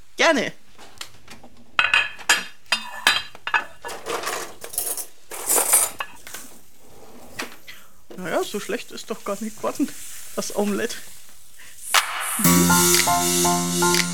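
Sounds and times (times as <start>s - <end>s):
speech: 0.3s - 0.6s, 8.5s - 11.1s, 12.4s - 14.1s
plates and cutlery clattering as plates are taken out for serving omelette in a kitchen: 1.8s - 6.6s.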